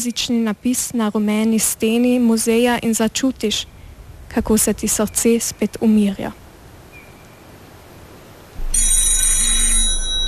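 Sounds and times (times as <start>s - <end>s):
speech: 0.0s - 6.4s
telephone ringing with buzzing bell tone: 8.6s - 10.2s.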